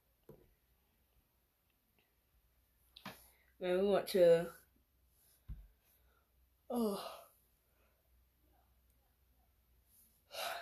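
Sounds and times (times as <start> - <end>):
speech: 3.6 - 4.6, 6.7 - 7.2
person yawning: 6.7 - 7.3.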